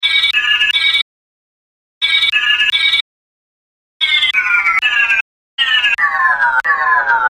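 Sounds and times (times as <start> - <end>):
phone ringtone: 0.0 - 1.1, 2.0 - 3.0, 4.0 - 7.3.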